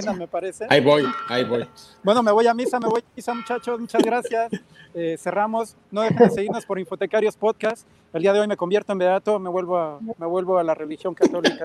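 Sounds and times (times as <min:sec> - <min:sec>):
bells ringing: 0:00.0 - 0:04.6
speech: 0:00.0 - 0:11.6
laughter: 0:02.4 - 0:03.0, 0:03.8 - 0:05.0, 0:06.0 - 0:06.7, 0:11.2 - 0:11.6.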